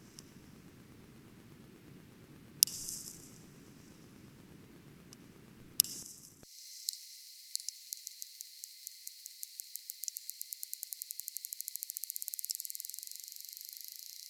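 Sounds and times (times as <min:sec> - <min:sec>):
steady hiss: 0:00.0 - 0:14.2
Cuvier's beaked whale echolocation clicks: 0:02.6 - 0:06.4, 0:07.5 - 0:14.2.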